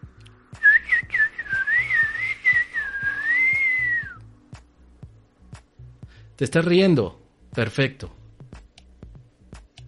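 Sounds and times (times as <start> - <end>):
warbling whistle imitating a little bird's song: 0.6 - 4.2
speech: 6.4 - 8.2.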